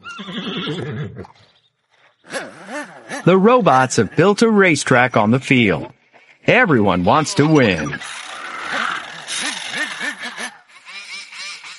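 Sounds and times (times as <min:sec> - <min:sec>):
horse whinnying on a farm: 0:00.0 - 0:04.3, 0:07.1 - 0:11.7
horse snorting: 0:00.0 - 0:04.4, 0:07.4 - 0:10.7
speech: 0:00.2 - 0:01.6, 0:02.2 - 0:08.2.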